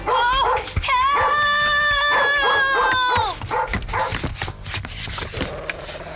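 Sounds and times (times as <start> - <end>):
dog tugging at a sock and scuffling: 0.0 - 6.1.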